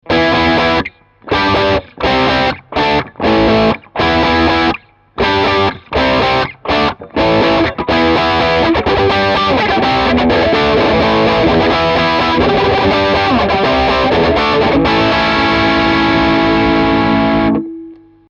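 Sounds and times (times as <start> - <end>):
Stratocaster American Professional electric guitar on bridge pickup played hard: 0.0 - 18.2.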